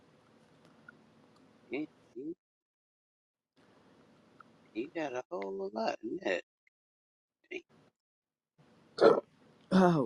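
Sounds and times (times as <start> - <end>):
speech: 1.7 - 2.4, 4.8 - 6.5, 7.5 - 7.8, 9.0 - 10.0
person burping: 9.0 - 9.8.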